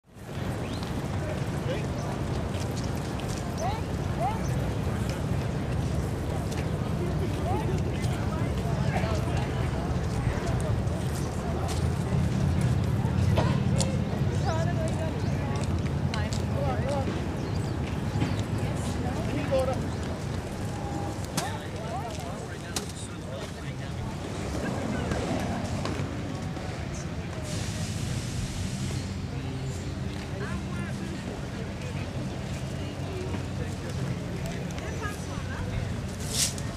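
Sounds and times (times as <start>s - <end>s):
city park ambience: 0.0s - 36.7s.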